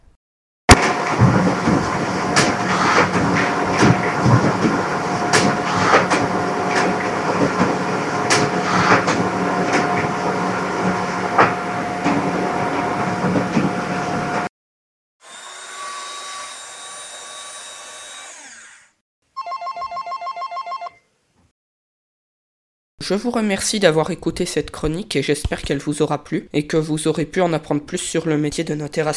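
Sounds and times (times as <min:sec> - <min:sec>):
office photocopier running: 0:00.8 - 0:14.5
office landline telephone ringing with electronic trill: 0:19.4 - 0:21.1
speech: 0:23.1 - 0:29.1.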